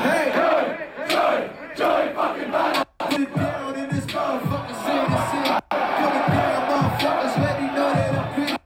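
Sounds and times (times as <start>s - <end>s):
rapper freestyling: 0.0s - 1.8s, 2.8s - 8.6s
large crowd at a rap concert chanting in unison: 0.0s - 8.6s
thumping bass beats: 2.8s - 8.6s.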